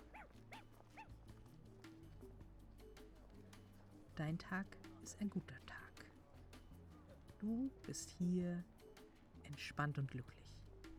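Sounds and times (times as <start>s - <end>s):
dog barking: 0.0s - 1.1s
speech: 4.2s - 5.8s, 7.4s - 8.7s, 9.5s - 10.4s.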